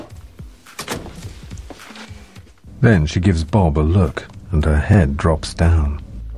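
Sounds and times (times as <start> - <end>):
rattling and scuffing: 0.0 - 2.8
door kicked shut with a foot: 0.8 - 1.5
speech: 2.8 - 6.0.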